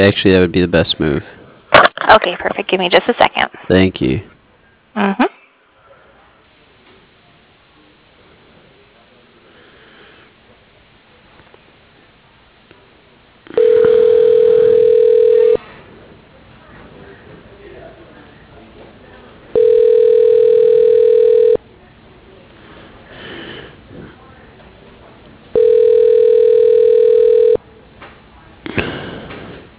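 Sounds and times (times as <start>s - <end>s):
speech: 0.0s - 1.4s, 2.1s - 4.3s, 5.0s - 5.4s
low noise: 0.0s - 29.7s
telephone line tones while a call is transferred to voicemail: 13.5s - 15.6s, 19.5s - 21.6s, 25.6s - 27.6s.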